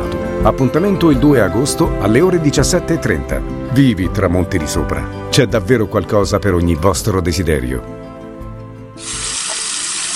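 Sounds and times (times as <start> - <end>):
speech: 0.4 - 8.0
water gushing from a tap: 9.0 - 10.1.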